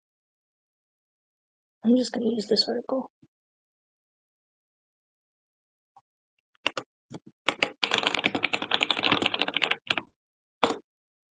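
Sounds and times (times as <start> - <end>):
speech: 1.8 - 3.3
typing on a computer keyboard: 6.6 - 10.8.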